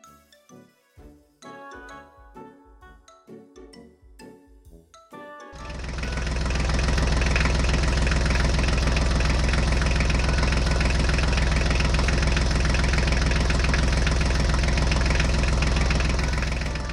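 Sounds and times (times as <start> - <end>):
tractor engine idling: 5.6 - 16.9.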